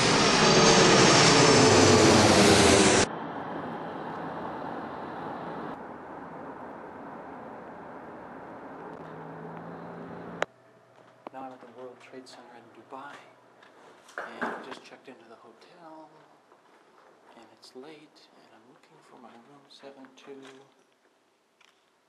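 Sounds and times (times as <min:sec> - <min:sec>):
airplane jet engine roaring in flight: 0:00.0 - 0:10.5
speech: 0:17.6 - 0:20.8.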